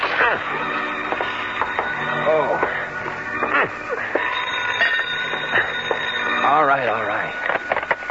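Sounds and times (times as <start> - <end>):
telephone ringing: 0.0 - 8.0
speech: 0.3 - 0.8.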